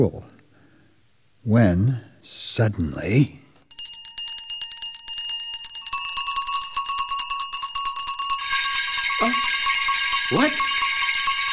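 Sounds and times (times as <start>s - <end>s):
speech: 0.0s - 0.3s, 1.4s - 3.4s, 10.3s - 10.6s
many small bells throughout a house ringing together: 3.7s - 11.5s.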